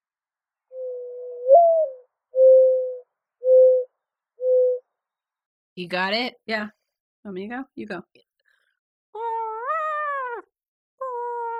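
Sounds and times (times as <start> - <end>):
bird with long low mournful coo and hooting notes: 0.7 - 4.8
speech: 5.8 - 8.3.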